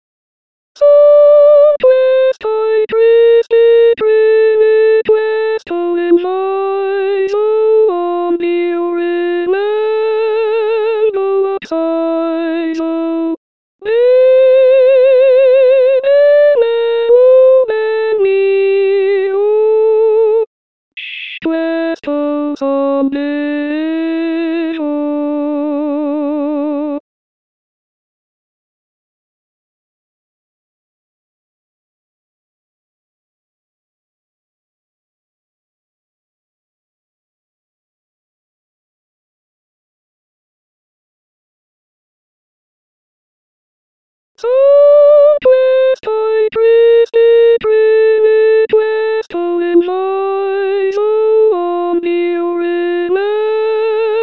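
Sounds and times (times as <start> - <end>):
soprano singing canzonetta: 0.8 - 27.0, 44.4 - 54.2.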